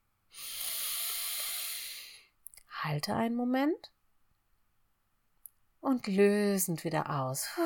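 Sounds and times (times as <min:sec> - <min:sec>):
slow inhale through the nose during a guided breathing exercise: 0:00.3 - 0:02.3
speech: 0:02.8 - 0:04.0, 0:05.8 - 0:07.6.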